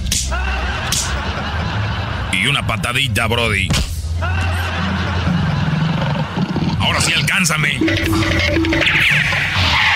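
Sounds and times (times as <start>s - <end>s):
sharp loud slaps: 0.0s - 1.2s
laughter: 0.3s - 3.0s, 4.2s - 7.3s
speech: 2.3s - 4.4s, 6.8s - 9.7s.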